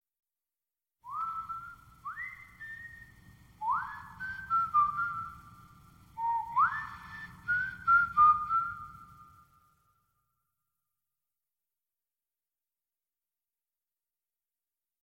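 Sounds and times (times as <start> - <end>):
person whistling a melody: 1.0 - 9.7.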